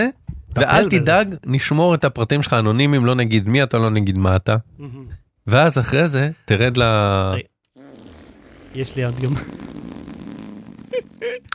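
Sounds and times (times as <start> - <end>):
speech: 0.0 - 7.5, 8.7 - 9.9
long rumbling fart: 7.8 - 11.4.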